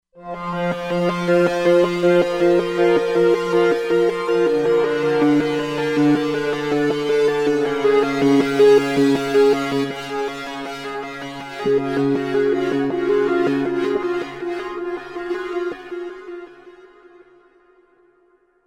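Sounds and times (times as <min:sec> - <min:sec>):
Roland Fantom XR synthesizer patch: 0:00.3 - 0:16.6.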